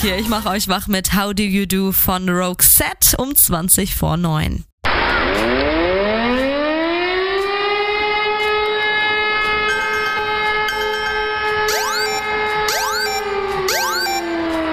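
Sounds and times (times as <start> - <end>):
speech: 0.0 - 4.7
civil defense warning siren during a nationwide alert test: 4.9 - 14.7.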